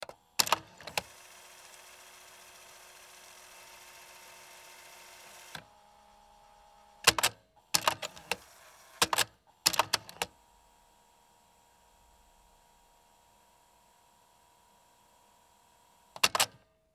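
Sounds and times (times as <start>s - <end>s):
answering machine: 0.0s - 5.8s, 7.0s - 10.4s, 16.1s - 16.6s.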